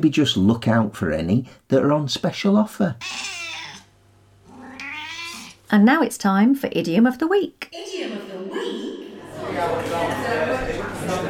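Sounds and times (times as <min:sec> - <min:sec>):
speech: 0:00.0 - 0:03.4, 0:05.7 - 0:08.8, 0:09.6 - 0:11.2
cat meowing: 0:03.0 - 0:03.9, 0:04.5 - 0:05.6.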